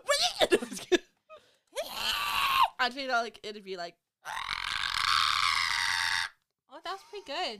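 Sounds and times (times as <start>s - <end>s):
voice imitating a monster's screech: 1.8s - 2.7s, 4.2s - 6.4s
speech: 2.8s - 4.6s, 6.9s - 7.5s.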